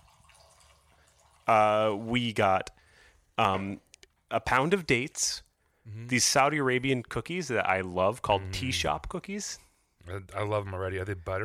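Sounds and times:
liquid poured into a glass from height: 0.0s - 1.8s
speech: 1.5s - 2.8s, 3.4s - 11.4s.

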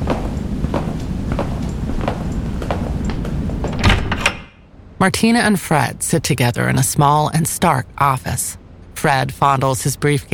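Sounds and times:
light rhythmic clicks: 0.0s - 4.4s
dilapidated freight elevator doors sliding open: 1.6s - 4.6s
speech: 5.0s - 10.3s.

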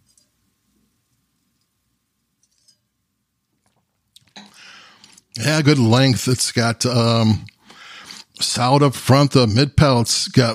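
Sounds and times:
person sipping and tasting wine: 3.6s - 5.4s
speech: 5.4s - 7.5s, 8.6s - 10.5s.

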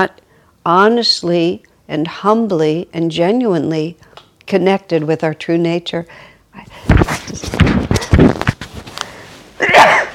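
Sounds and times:
speech: 0.0s - 7.8s
human sneeze: 9.6s - 10.1s.

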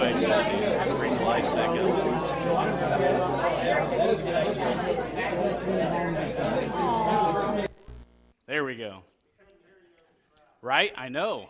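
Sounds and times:
crowd chatter: 0.0s - 7.8s
speech: 8.6s - 9.1s, 10.6s - 11.4s.

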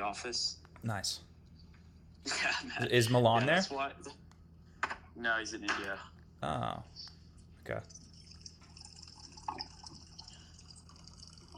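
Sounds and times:
speech: 0.0s - 1.3s, 2.2s - 4.2s, 5.2s - 8.0s
thin stream of water running into a container: 7.9s - 11.5s.

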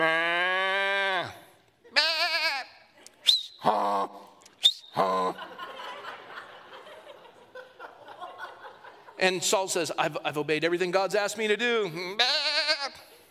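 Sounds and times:
sheep bleating: 0.0s - 2.9s, 12.0s - 13.1s
laughter: 5.0s - 9.6s
speech: 9.2s - 12.6s.

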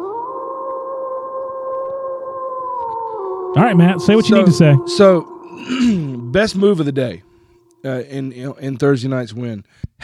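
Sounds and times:
long howl: 0.0s - 7.6s
speech: 3.6s - 10.0s.

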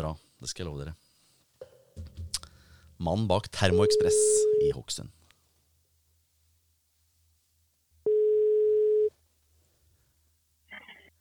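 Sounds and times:
speech: 0.0s - 1.0s, 3.0s - 5.2s
quiet telephone line hiss: 0.0s - 11.1s
telephone ringback tone while placing a call: 8.1s - 9.1s.

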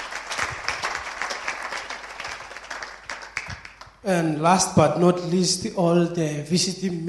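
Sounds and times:
large group applauding: 0.0s - 4.0s
speech: 4.0s - 7.0s.

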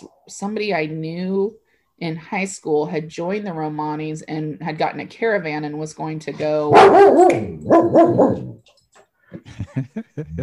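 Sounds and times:
speech: 0.0s - 8.6s, 9.3s - 10.4s
dog barking: 6.7s - 8.6s
laughter: 9.4s - 10.4s.

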